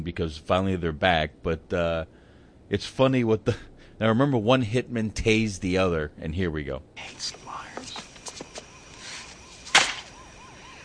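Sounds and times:
speech: 0.0 - 8.0
low noise: 0.0 - 10.8
faint chirpy tones: 7.0 - 10.8
sharp loud slap: 9.6 - 10.1.

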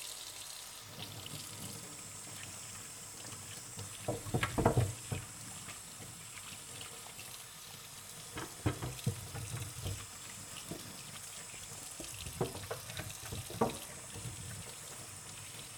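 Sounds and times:
running tap water washing vegetables: 0.0 - 15.7
splashes and knocks: 3.8 - 5.4, 8.3 - 10.1, 12.0 - 14.4.

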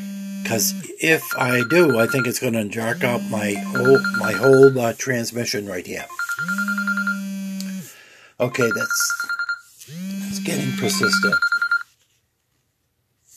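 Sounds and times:
speech: 0.4 - 6.7, 8.4 - 9.2, 10.6 - 11.5
phone ringtone from an incoming call: 0.5 - 4.8, 6.0 - 7.3, 8.4 - 11.9.

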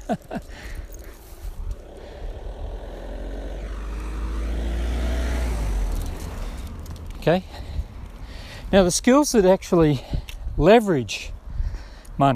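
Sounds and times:
wind noise: 0.0 - 12.3
speech: 0.1 - 0.8, 7.2 - 7.6, 8.7 - 11.4
car engine rumble passing on a country road: 0.1 - 9.2.

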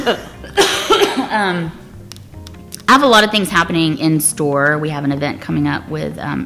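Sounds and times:
speech: 0.0 - 0.3, 1.3 - 1.8, 2.9 - 6.4
brief throaty vocal sound: 0.0 - 1.9
person with allergies coughing: 0.0 - 1.9.

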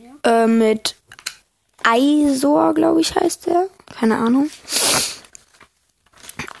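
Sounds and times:
speech: 0.2 - 1.0, 1.8 - 4.8
pages of a paper booklet being leafed through: 3.8 - 6.5.

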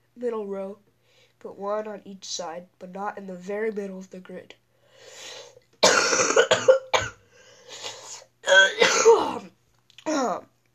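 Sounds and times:
speech: 0.2 - 5.4, 8.5 - 9.5, 10.1 - 10.5
loud coughs: 5.8 - 7.2, 8.5 - 9.4.

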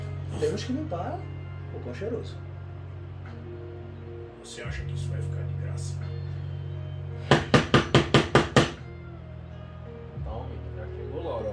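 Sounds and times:
speech: 0.4 - 2.5, 4.4 - 6.2
firm knocking on a door: 7.3 - 8.8.

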